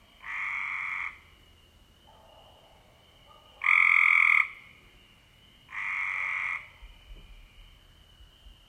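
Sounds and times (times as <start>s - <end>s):
Cope's gray treefrog raspy trills: 0.2s - 1.3s, 3.6s - 4.8s, 5.7s - 7.0s.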